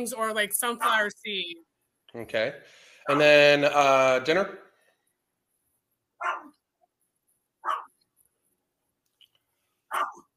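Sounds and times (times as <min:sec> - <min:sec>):
speech: 0:00.0 - 0:04.7
dog barking: 0:06.2 - 0:06.6, 0:07.6 - 0:08.0, 0:09.9 - 0:10.3.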